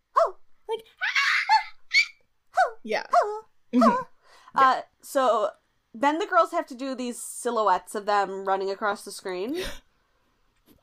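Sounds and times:
voice imitating a squeaky stepped-on kitten scream: 0:01.0 - 0:04.1
speech: 0:02.8 - 0:09.8.

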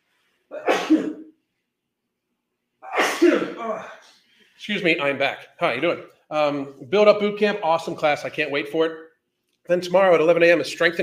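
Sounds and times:
person sneezing set off by lights: 0:00.5 - 0:01.3, 0:02.8 - 0:04.2
speech: 0:03.6 - 0:09.0, 0:09.6 - 0:11.0.

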